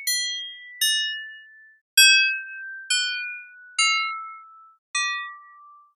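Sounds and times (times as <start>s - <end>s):
bell synth: 0.1s - 5.9s.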